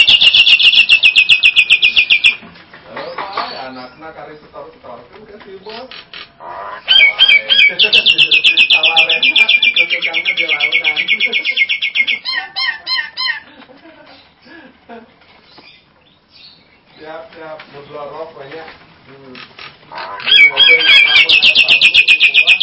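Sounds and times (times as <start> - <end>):
Nias hill myna giving loud varied calls: 0.0 - 2.4, 5.9 - 13.5, 19.3 - 22.6
laughter: 11.0 - 15.3.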